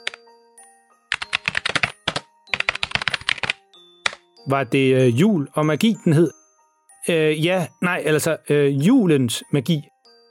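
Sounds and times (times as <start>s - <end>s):
librarian typing on a computer keyboard: 0.0s - 0.2s, 1.1s - 4.2s
speech: 4.4s - 6.4s, 7.0s - 9.9s.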